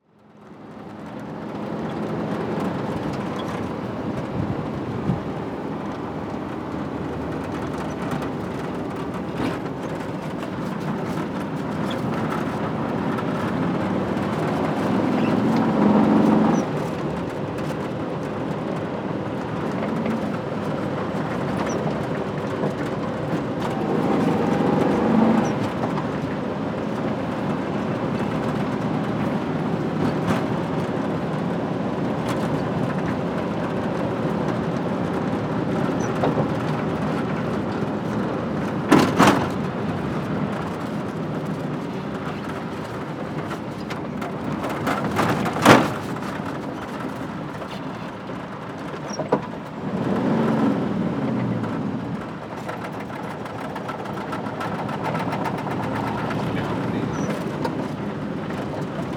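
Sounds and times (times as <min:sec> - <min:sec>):
Kombi van interior driving on gravel road: 0:00.1 - 0:59.1.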